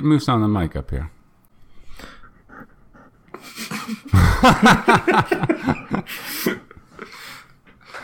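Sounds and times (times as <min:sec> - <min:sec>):
speech: 0:00.0 - 0:01.2, 0:03.4 - 0:06.7
dog panting rapidly and heavily: 0:02.1 - 0:03.4
laughter: 0:03.4 - 0:07.0.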